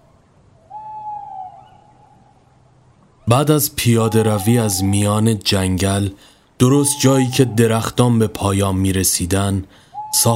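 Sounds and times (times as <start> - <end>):
owl hooting among trees in a forested valley: 0.6 - 2.4, 3.2 - 5.3, 6.6 - 8.4, 9.8 - 10.3
speech: 3.3 - 10.3.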